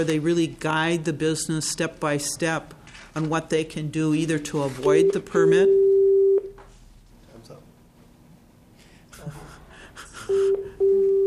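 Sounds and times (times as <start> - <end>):
speech: 0.0 - 5.8
telephone tones on speakerphone: 4.9 - 6.5, 10.3 - 11.2.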